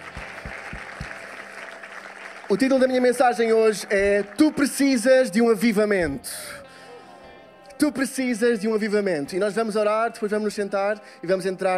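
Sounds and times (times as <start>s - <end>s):
audience applause: 0.0s - 5.4s
speech: 2.5s - 6.6s, 7.8s - 11.7s.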